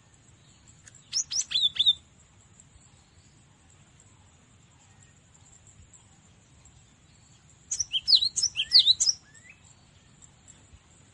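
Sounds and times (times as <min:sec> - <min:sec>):
Cinereous tit sharp high chirping notes: 0:01.0 - 0:02.0, 0:07.7 - 0:09.4.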